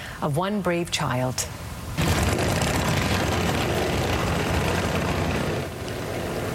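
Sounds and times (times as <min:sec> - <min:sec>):
speech: 0:00.2 - 0:01.6
several motorcycle engines revving as a group rides off: 0:02.0 - 0:05.8.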